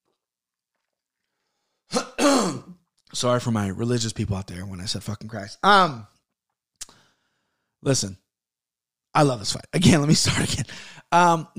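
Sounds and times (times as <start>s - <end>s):
person clearing throat: 1.9s - 2.8s
speech: 3.1s - 6.1s, 7.8s - 8.2s, 9.2s - 11.5s.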